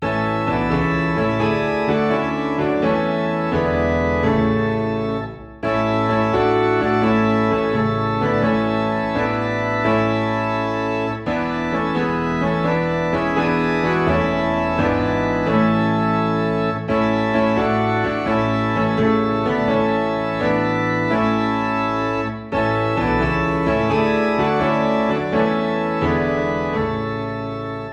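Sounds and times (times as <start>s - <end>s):
low organ in A: 0.0s - 27.9s
low piano in A: 0.0s - 27.9s.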